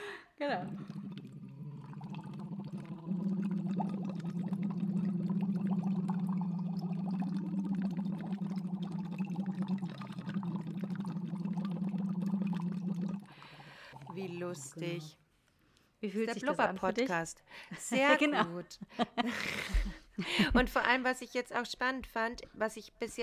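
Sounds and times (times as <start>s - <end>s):
speech: 0.4s - 1.2s, 14.4s - 15.2s, 16.0s - 23.2s
hummed tone blown through water during a voice exercise: 0.5s - 14.4s.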